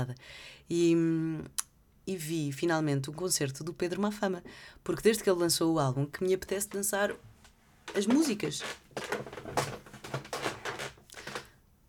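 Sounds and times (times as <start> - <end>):
speech: 0.0 - 7.3, 7.9 - 9.8
chair creaking: 7.9 - 11.6.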